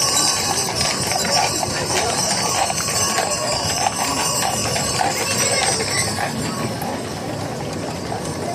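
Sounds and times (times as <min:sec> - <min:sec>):
busy noisy crowd: 0:00.0 - 0:08.5
heavy horse-drawn beer wagon rolling: 0:00.0 - 0:08.5
horse hooves of a horse-drawn beer wagon clip-clopping: 0:00.0 - 0:08.5.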